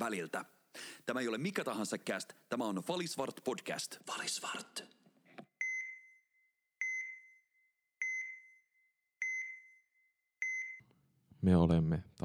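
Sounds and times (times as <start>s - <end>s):
speech: 0.0s - 5.0s, 11.4s - 12.2s
phone notification chime beeps: 6.8s - 7.4s, 8.0s - 8.6s, 9.2s - 10.8s.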